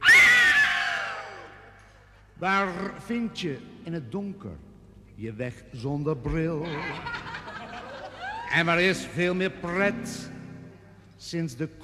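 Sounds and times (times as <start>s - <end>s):
shrill high-pitched scream in the night: 0.0s - 1.8s
speech: 2.4s - 7.2s, 8.5s - 10.4s, 11.2s - 11.8s
laughter: 6.6s - 8.8s.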